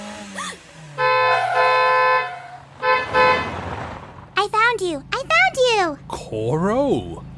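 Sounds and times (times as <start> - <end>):
faint road noise: 0.0 - 7.3
low car engine rumble: 0.0 - 7.3
swerving car horn honking: 0.9 - 3.7
speech: 6.2 - 7.3.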